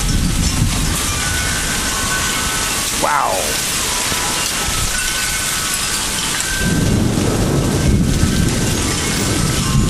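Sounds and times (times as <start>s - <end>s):
heavy rain pouring outdoors during a thunderstorm: 0.0s - 9.8s
deep rumble of thunder: 6.6s - 9.8s.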